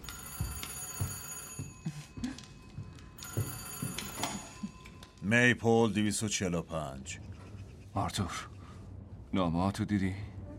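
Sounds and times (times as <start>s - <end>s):
telephone bell ringing: 0.0s - 5.2s
speech: 5.3s - 7.3s, 8.0s - 8.5s, 9.3s - 10.3s.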